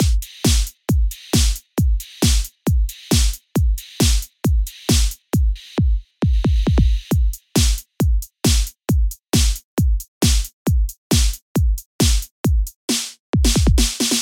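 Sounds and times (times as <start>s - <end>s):
hard trance beat: 0.0s - 12.8s, 13.4s - 14.2s.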